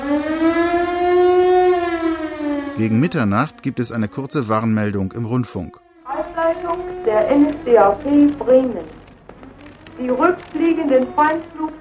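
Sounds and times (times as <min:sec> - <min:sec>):
air raid sirens wailing across Bremen on a hot August evening: 0:00.0 - 0:04.9, 0:05.6 - 0:11.8
speech: 0:02.8 - 0:05.8, 0:06.4 - 0:09.0, 0:10.0 - 0:11.8.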